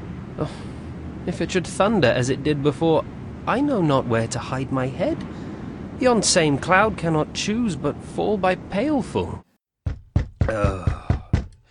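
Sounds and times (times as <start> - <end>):
speech: 0.4 - 5.4, 6.0 - 9.4, 10.5 - 10.9
heavy knocking on a door: 9.8 - 11.6.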